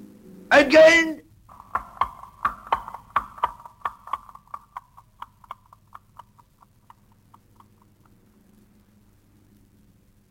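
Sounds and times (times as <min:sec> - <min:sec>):
speech: 0:00.5 - 0:01.2
horse hooves clip-clopping: 0:01.5 - 0:08.4.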